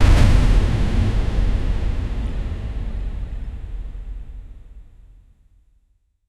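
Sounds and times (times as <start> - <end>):
heavy rain: 0.0 - 3.6
distant thunder: 0.0 - 4.1.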